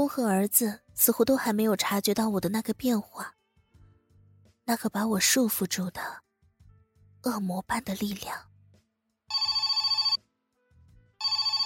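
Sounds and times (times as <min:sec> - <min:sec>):
speech: 0:00.0 - 0:03.4, 0:04.7 - 0:06.2, 0:07.2 - 0:08.5
classic telephone bell ringing: 0:09.3 - 0:10.2, 0:11.2 - 0:11.6.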